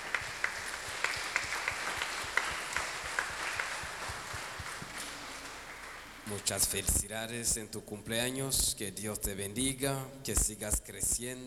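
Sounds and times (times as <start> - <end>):
audience applauding in church: 0.0 - 6.5
speech: 6.3 - 11.4.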